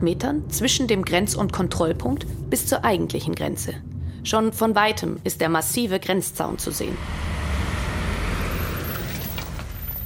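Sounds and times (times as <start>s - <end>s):
speech: 0.0s - 7.4s
cars driving past on a road at a border crossing: 6.5s - 10.0s.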